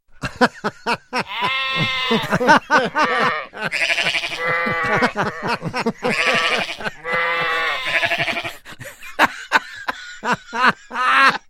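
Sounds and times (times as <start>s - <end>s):
laughter: 0.2s - 11.4s
sheep bleating at night: 1.2s - 8.6s.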